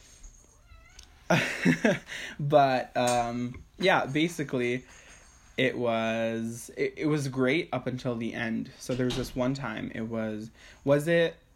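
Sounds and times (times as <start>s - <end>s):
cat meowing: 0.6s - 1.2s
speech: 1.3s - 5.0s, 5.6s - 11.4s.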